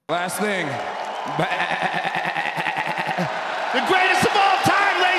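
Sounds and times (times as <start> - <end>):
speech: 0.1 - 2.5
laughter: 1.2 - 5.0
fighter bleating like a goat after a victory: 1.4 - 3.3.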